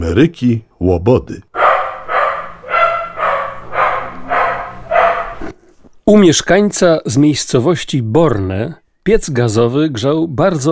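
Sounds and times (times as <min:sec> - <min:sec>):
speech: 0:00.0 - 0:01.5, 0:06.1 - 0:10.7
dog barking: 0:01.6 - 0:05.5.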